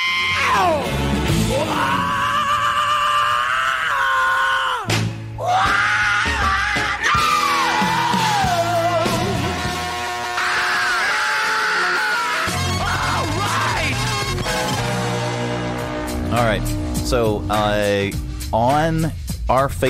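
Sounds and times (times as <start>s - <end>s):
driving rock band music: 0.0s - 2.1s, 4.9s - 19.8s
famous rock singers' sustained vocal screams and wails: 0.0s - 14.8s
speech: 17.1s - 19.8s.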